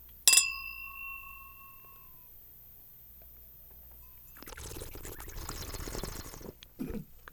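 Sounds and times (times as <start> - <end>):
bright glass clink: 0.3 - 2.4
slurping wine with air over tongue: 4.3 - 6.6.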